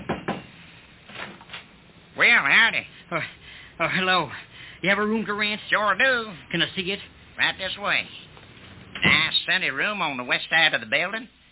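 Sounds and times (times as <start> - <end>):
knocking on a wooden door: 0.0 - 0.5
speech: 2.3 - 8.2, 9.0 - 11.4.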